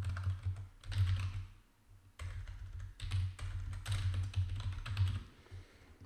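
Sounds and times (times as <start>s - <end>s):
computer keyboard typing password and e-mail address during WordPress installation: 0.0s - 1.5s, 2.2s - 5.3s.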